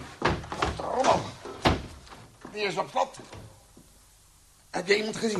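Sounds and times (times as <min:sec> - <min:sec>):
door swinging and slamming shut: 0:00.2 - 0:02.3
speech: 0:02.6 - 0:03.4, 0:04.8 - 0:05.3.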